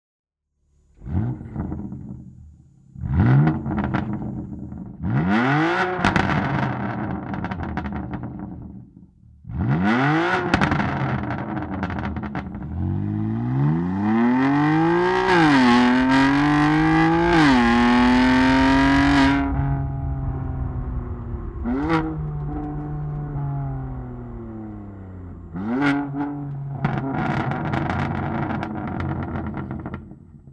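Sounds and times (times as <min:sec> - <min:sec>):
BMW M2 Competition exhaust with downpipe: 0:00.7 - 0:30.5.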